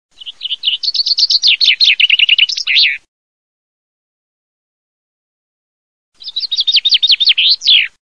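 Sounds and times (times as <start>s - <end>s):
fringuello bird singing: 0.2s - 3.0s, 6.2s - 8.0s.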